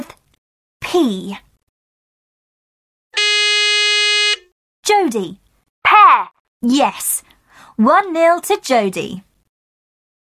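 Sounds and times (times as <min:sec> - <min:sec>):
speech: 0:01.0 - 0:01.5, 0:05.0 - 0:05.4, 0:06.1 - 0:09.3
quiz game buzzer: 0:03.2 - 0:04.4.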